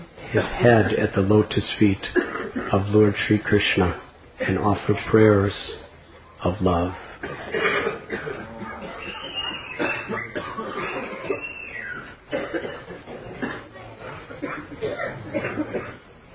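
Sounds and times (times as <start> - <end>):
speech: 0.3 - 5.8, 6.4 - 8.4
people coughing during a kirtan in Vrindavan: 1.9 - 5.1, 6.9 - 16.2
throat clearing: 2.1 - 2.8, 7.2 - 11.6, 12.3 - 16.1.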